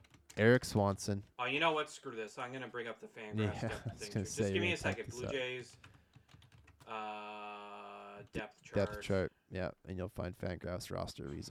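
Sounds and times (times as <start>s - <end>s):
crisp computer keyboard keystrokes: 0.0s - 0.5s, 4.8s - 6.9s
speech: 0.4s - 5.9s, 6.9s - 7.3s, 8.3s - 11.4s.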